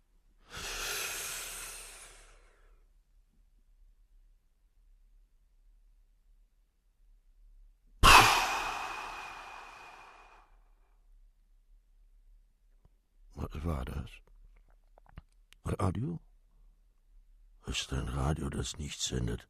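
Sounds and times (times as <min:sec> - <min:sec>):
person breathing in: 0:00.4 - 0:02.9, 0:08.0 - 0:10.5
speech: 0:13.5 - 0:14.3, 0:15.6 - 0:16.3, 0:17.7 - 0:19.4.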